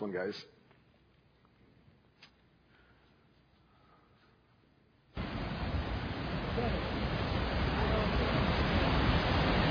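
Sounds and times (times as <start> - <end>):
speech: 0.0 - 0.6
river rapids above the falls beside Goat Island: 5.2 - 9.6.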